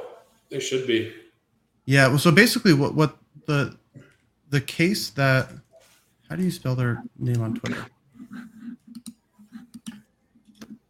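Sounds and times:
speech: 0:00.5 - 0:01.2, 0:01.9 - 0:05.7, 0:06.3 - 0:08.5
keyboard typing: 0:07.0 - 0:10.8.

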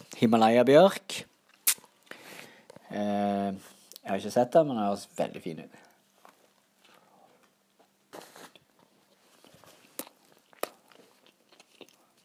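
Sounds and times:
speech: 0:00.2 - 0:01.3, 0:02.9 - 0:05.8
wet chewing and crunching: 0:07.7 - 0:12.2.

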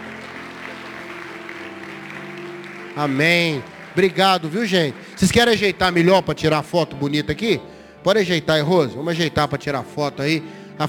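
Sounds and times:
crowd clapping: 0:00.0 - 0:06.5
speech: 0:03.0 - 0:10.8.

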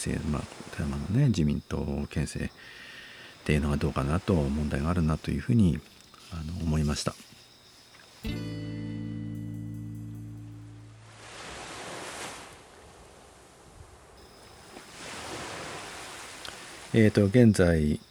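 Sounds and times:
ocean waves: 0:00.0 - 0:01.2, 0:02.5 - 0:06.8, 0:11.0 - 0:17.4
speech: 0:00.0 - 0:07.3, 0:08.2 - 0:08.6, 0:17.0 - 0:18.1.

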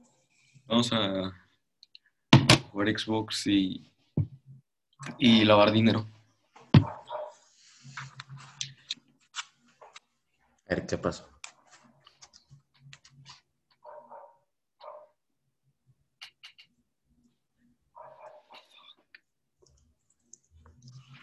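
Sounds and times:
speech: 0:00.7 - 0:01.4, 0:02.8 - 0:04.3, 0:05.0 - 0:06.2, 0:10.7 - 0:11.3
German shepherd dog barking: 0:06.8 - 0:07.4, 0:13.8 - 0:15.2, 0:18.0 - 0:18.6.

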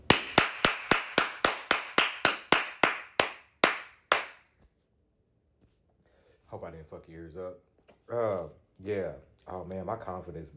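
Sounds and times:
hands clapping: 0:00.0 - 0:04.7
speech: 0:06.5 - 0:10.5.

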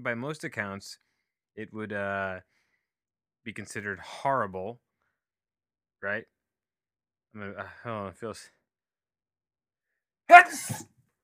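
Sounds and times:
speech: 0:00.0 - 0:02.6, 0:03.4 - 0:04.8, 0:06.0 - 0:06.4, 0:07.3 - 0:08.6, 0:10.3 - 0:10.9
breathy voiced catches: 0:10.3 - 0:10.8
sneeze: 0:10.3 - 0:10.8.

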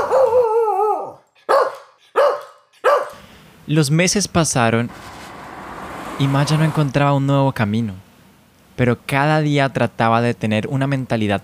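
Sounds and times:
small dog whiny yelp and high-pitched barks: 0:00.0 - 0:03.2
speech: 0:03.7 - 0:05.2, 0:06.2 - 0:08.0, 0:08.8 - 0:11.4.

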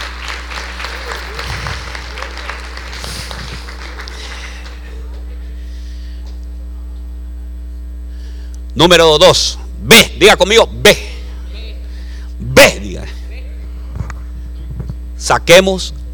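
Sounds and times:
audience applauding: 0:00.0 - 0:05.4
low electrical hum: 0:00.0 - 0:16.1
speech: 0:08.8 - 0:11.0, 0:15.3 - 0:16.1.

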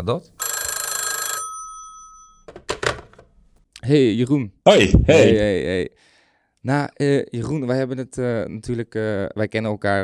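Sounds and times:
speech: 0:00.0 - 0:00.4, 0:03.9 - 0:10.0
telephone ringing with a bright electronic trill as a call is placed: 0:00.4 - 0:02.7.

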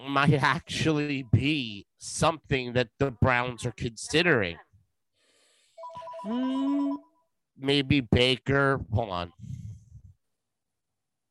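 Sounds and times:
speech: 0:00.1 - 0:04.6, 0:06.2 - 0:09.6
phone ringtone with electronic melodic tone: 0:05.8 - 0:07.2.

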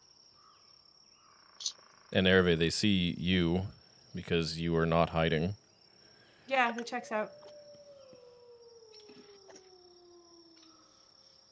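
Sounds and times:
speech: 0:01.6 - 0:05.6, 0:06.5 - 0:07.4
howling: 0:06.8 - 0:11.1.

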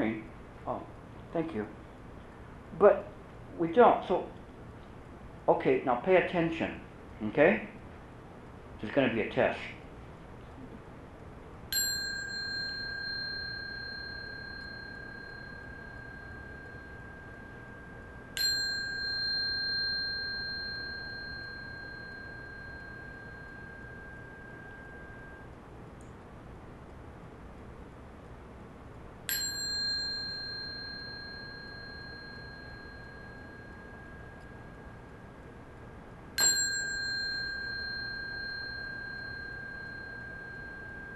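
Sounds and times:
speech: 0:00.1 - 0:01.8, 0:02.7 - 0:04.4, 0:05.5 - 0:07.8, 0:08.8 - 0:09.8
bell struck with long clear sustained tone: 0:11.7 - 0:25.6, 0:29.3 - 0:41.1.

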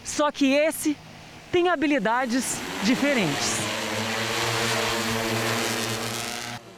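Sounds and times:
speech: 0:00.2 - 0:03.6
incinerator drone propellers buzzing in flight: 0:02.2 - 0:06.7.

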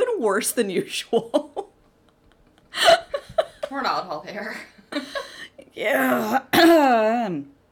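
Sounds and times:
speech: 0:00.2 - 0:01.6, 0:03.7 - 0:07.6
person coughing into a microphone: 0:06.0 - 0:07.0.

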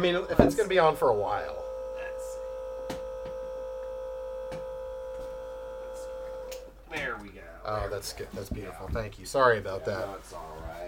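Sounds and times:
speech: 0:00.0 - 0:01.6, 0:07.7 - 0:10.8
refrigerator hum: 0:00.0 - 0:08.0.

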